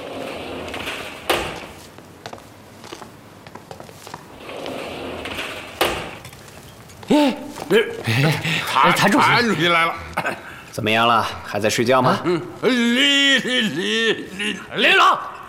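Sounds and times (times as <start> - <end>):
door being opened to release a prisoner: 0.0 - 1.9, 4.3 - 6.8
laughter: 7.2 - 10.6, 12.0 - 15.3
speech: 7.2 - 15.3.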